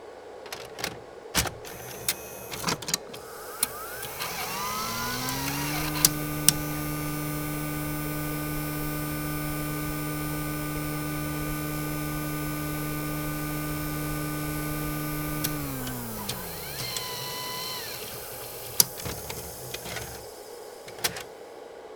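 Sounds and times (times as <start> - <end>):
Sony DVW videotape inserted and ejected: 0.4 - 21.6.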